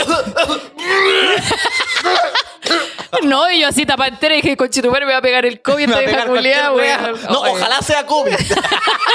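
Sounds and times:
voice imitating a heavy gagging cough almost retching: 0.0s - 3.2s
laughter: 1.1s - 3.4s, 5.8s - 9.1s
speech: 3.3s - 9.1s.

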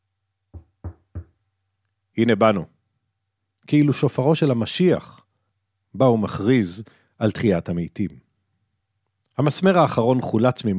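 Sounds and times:
firm knocking on a door: 0.5s - 1.4s
speech: 2.2s - 2.7s, 3.7s - 5.2s, 5.9s - 8.3s, 9.4s - 10.7s.

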